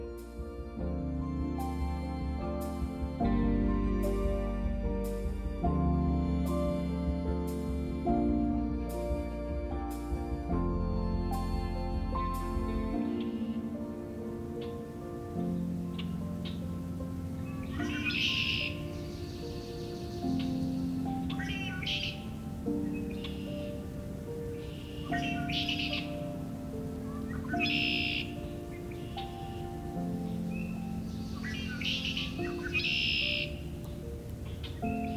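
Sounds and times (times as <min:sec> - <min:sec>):
deep sustained tones: 0:00.0 - 0:35.1
Red-winged Blackbirds and other birds singing in mid-March: 0:14.6 - 0:35.1.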